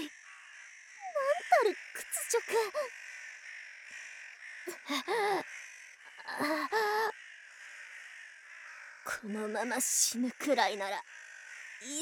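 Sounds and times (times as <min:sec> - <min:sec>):
speech: 0:01.6 - 0:03.0, 0:04.9 - 0:05.4, 0:09.2 - 0:11.2, 0:11.8 - 0:12.0
crows cawing harshly: 0:01.7 - 0:09.8, 0:11.0 - 0:12.0.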